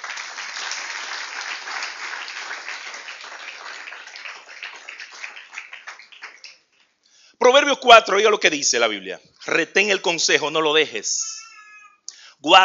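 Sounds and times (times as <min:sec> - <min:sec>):
congregation applause during a Bible sermon: 0:00.0 - 0:06.9
speech: 0:07.4 - 0:11.4, 0:12.4 - 0:12.6.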